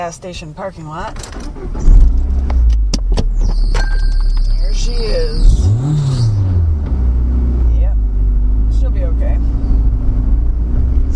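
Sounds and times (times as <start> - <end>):
speech: 0.0 - 2.8, 4.8 - 6.2
car engine running: 0.6 - 11.1
new noisy engine belt squeaking: 3.3 - 5.4.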